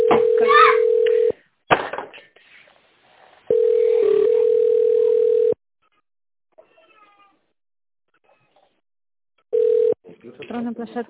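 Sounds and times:
telephone dial tone while placing a call: 0.0 - 1.4, 3.5 - 5.6, 9.6 - 10.0
speech: 10.8 - 11.0.

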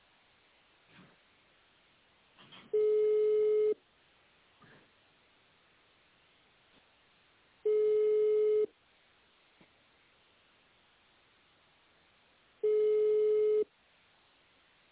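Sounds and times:
telephone ringback tone beeps on a call to a company: 2.8 - 3.8, 7.7 - 8.7, 12.6 - 13.7.

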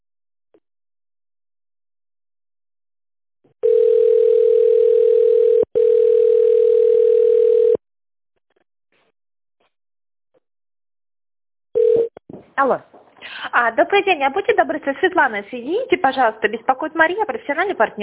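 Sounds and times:
telephone ringback tone on a call to a company line: 3.6 - 7.8, 11.8 - 12.1
speech: 12.6 - 18.0.

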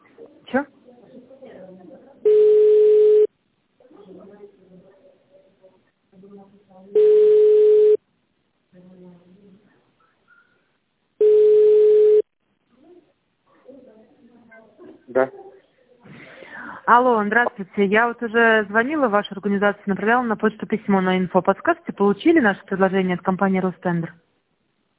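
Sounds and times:
speech: 0.5 - 0.8, 16.9 - 24.2
telephone ringback tone while an automated system connects the call: 2.3 - 3.3, 7.0 - 8.0, 11.2 - 12.3.

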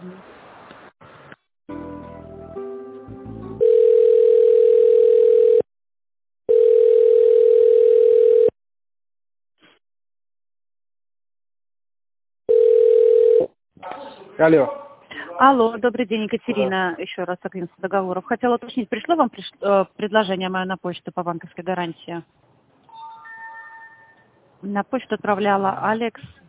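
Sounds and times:
long low-pitched telephone tones while a call is transferred to management: 3.6 - 5.6, 6.5 - 8.5, 12.5 - 13.5
speech: 14.4 - 14.8, 15.4 - 22.4, 24.6 - 26.4.

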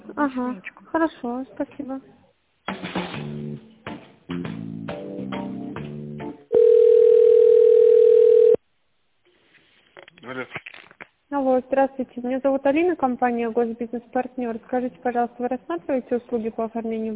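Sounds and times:
speech: 0.2 - 2.2, 10.3 - 10.7, 11.3 - 17.1
telephone ringing tone while a call is transferred: 6.5 - 8.6.

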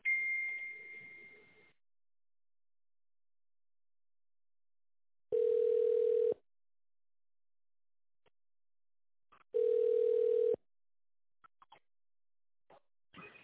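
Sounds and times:
telephone ringback tone: 5.3 - 6.4, 9.6 - 10.6.

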